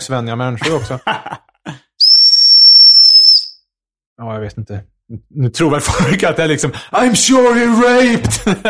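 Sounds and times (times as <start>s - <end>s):
speech: 0.0s - 1.4s, 4.2s - 8.6s
laughter: 0.6s - 1.8s, 8.2s - 8.6s
rape alarm whistle blown hard: 2.0s - 3.6s.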